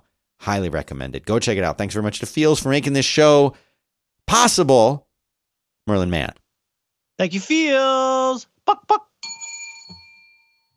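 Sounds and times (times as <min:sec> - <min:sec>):
speech: 0:00.5 - 0:03.7, 0:04.3 - 0:05.1, 0:05.9 - 0:06.4, 0:07.2 - 0:09.1
single bell strike with bright sustained metallic tones: 0:09.2 - 0:10.7.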